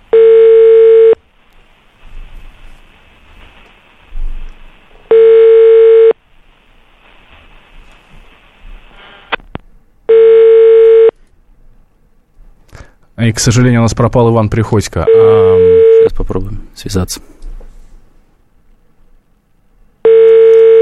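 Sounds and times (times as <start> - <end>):
quiet telephone line noise: 0.0 - 20.8
telephone ringback tone from an unanswered call: 0.1 - 1.2, 5.1 - 6.2, 10.1 - 11.1, 15.1 - 16.1, 20.0 - 20.8
speech: 13.2 - 17.3.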